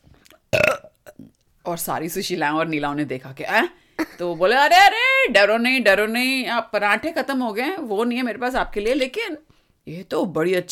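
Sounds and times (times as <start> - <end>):
loud rasping burp: 0.5 - 1.4
speech: 1.7 - 10.7.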